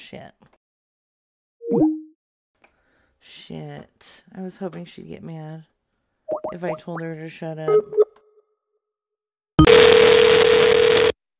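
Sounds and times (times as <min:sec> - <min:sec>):
speech: 0:00.1 - 0:00.6, 0:03.2 - 0:05.7, 0:06.5 - 0:08.0
telephone tone from a booby-trapped phone: 0:09.6 - 0:11.2.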